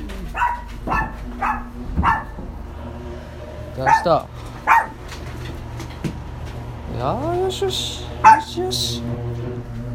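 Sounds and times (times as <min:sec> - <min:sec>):
household dog barking in sharp yaps: 0:00.3 - 0:02.4, 0:03.8 - 0:05.0, 0:08.2 - 0:08.6
speech: 0:03.8 - 0:04.5, 0:07.0 - 0:09.8.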